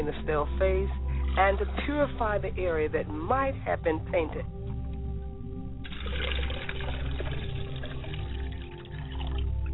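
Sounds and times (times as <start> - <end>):
speech: 0.0 - 4.6
water poured onto the ground: 5.8 - 9.6.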